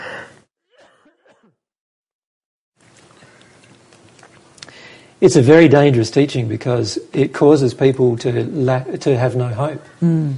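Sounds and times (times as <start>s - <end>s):
raspy coughs: 0.7s - 1.6s
steady hiss of rustling noise: 2.8s - 10.3s
speech: 5.2s - 10.3s.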